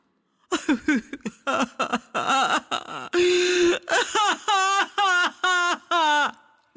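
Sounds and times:
person whimpering and crying in wavering sobs and wails: 0.5s - 6.7s.

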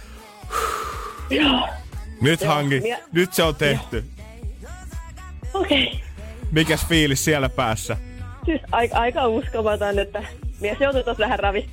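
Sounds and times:
slow calming breaths close to the mic: 0.2s - 1.3s
speech: 1.3s - 4.2s, 5.6s - 11.7s.

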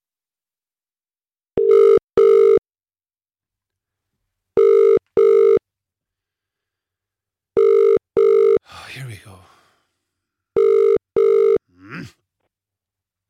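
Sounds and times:
telephone ringing tone in double-pulse pattern: 1.6s - 2.6s, 4.6s - 5.6s, 7.6s - 8.6s, 10.6s - 11.6s
speech: 9.2s - 9.6s.

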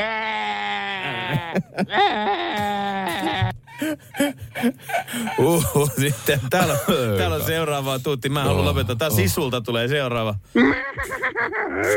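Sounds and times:
person imitating sheep bleating like a movie sound effect: 0.0s - 3.5s
speech: 1.3s - 2.6s, 3.8s - 11.9s.

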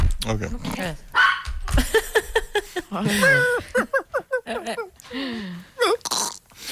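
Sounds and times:
speech: 0.3s - 1.1s, 1.8s - 6.2s
dog barking: 1.2s - 1.6s
laughter: 1.8s - 4.9s.

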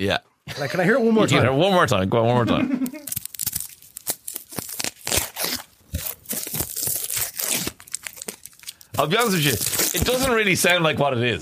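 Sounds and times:
speech: 0.0s - 3.0s, 9.0s - 11.3s
boiled egg shell cracking and being peeled: 2.8s - 10.3s.

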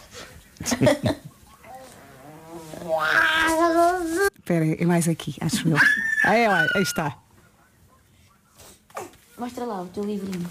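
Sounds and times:
speech: 0.7s - 1.3s, 4.5s - 7.2s, 9.4s - 10.4s
baby squealing while trying to laugh: 2.2s - 4.2s, 5.8s - 7.2s.

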